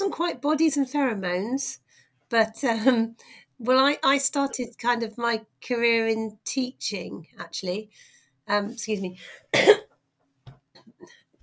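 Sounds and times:
speech: 0:00.1 - 0:09.8
person coughing after a third round of COVID: 0:09.5 - 0:09.9.

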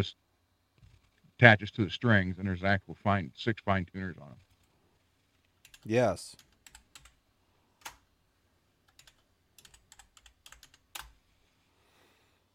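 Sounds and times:
speech: 0:00.0 - 0:00.2, 0:01.4 - 0:04.4, 0:05.8 - 0:06.5
typing on a computer keyboard: 0:05.6 - 0:07.2, 0:07.8 - 0:08.0, 0:08.8 - 0:11.2.

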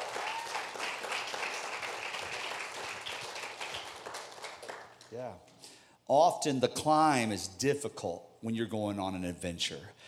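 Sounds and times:
audience applause: 0:00.0 - 0:05.0
speech: 0:05.1 - 0:05.5, 0:06.1 - 0:10.0.

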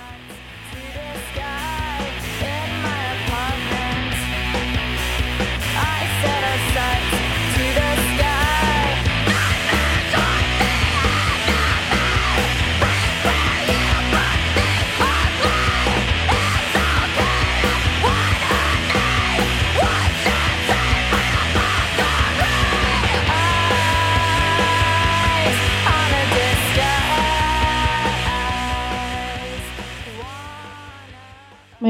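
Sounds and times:
loud driving alternative grunge rock band music: 0:00.0 - 0:31.8
lead singer of an alternative grunge rock band screaming: 0:08.0 - 0:29.6.

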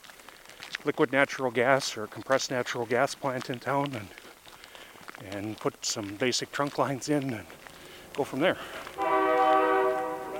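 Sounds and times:
speech: 0:00.8 - 0:04.2, 0:05.2 - 0:07.6, 0:08.2 - 0:09.2
faint rumble of passing train: 0:07.3 - 0:10.3
horn of a train passing through the town of Rugby: 0:09.0 - 0:10.3.

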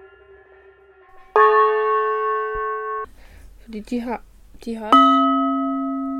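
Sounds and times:
golden metal singing bowl struck and ringing: 0:00.0 - 0:03.1, 0:04.9 - 0:06.1
speech: 0:03.7 - 0:05.4.

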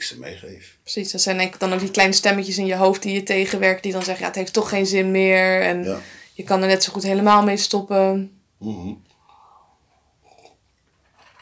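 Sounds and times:
speech: 0:00.1 - 0:09.1
faint breathing: 0:05.9 - 0:06.4, 0:09.2 - 0:10.4
person sipping iced coffee with wet slurping and swallowing: 0:09.2 - 0:10.6.

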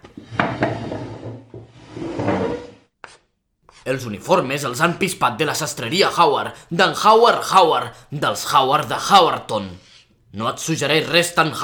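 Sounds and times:
heavy wooden blackboard scraping and rumbling across the floor: 0:00.0 - 0:03.2
speech: 0:03.9 - 0:11.6.

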